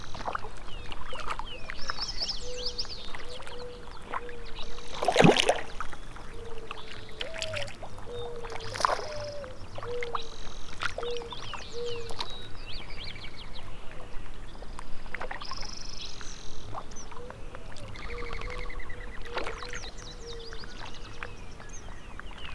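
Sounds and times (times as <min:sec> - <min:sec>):
lake water: 0:00.0 - 0:22.5.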